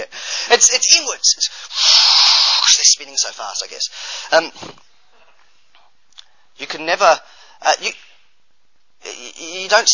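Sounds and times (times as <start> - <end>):
speech: 0.6 - 2.0, 2.8 - 4.8, 6.6 - 8.1, 9.0 - 9.9
person sneezing: 1.7 - 2.8.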